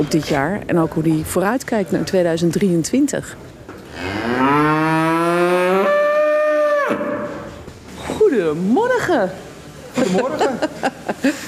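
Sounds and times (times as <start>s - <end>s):
speech: 0.0s - 4.6s, 8.4s - 9.4s, 10.0s - 11.4s
cow mooing in a barn: 3.9s - 7.6s
laughter: 9.9s - 11.4s.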